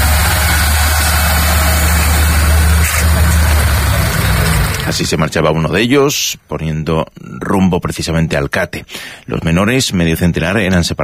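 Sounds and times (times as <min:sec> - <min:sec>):
bus engine rumbling: 0:00.0 - 0:05.8
speech: 0:04.9 - 0:11.0.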